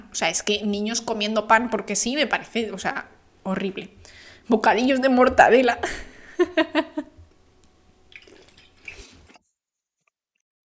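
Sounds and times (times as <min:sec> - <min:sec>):
speech: 0:00.2 - 0:07.1
laughter: 0:05.9 - 0:07.2
liquid slurped through a straw from a bottle: 0:08.1 - 0:09.4.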